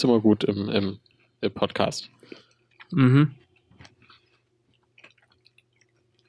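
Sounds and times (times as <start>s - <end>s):
speech: 0.0s - 3.4s
wet chewing of coconut chocolate: 2.1s - 6.2s.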